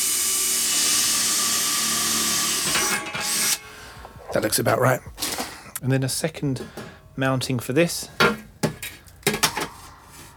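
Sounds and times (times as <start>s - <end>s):
power drill drilling through the centre of a dish: 0.0s - 3.6s
speech: 4.4s - 5.1s, 5.8s - 8.2s.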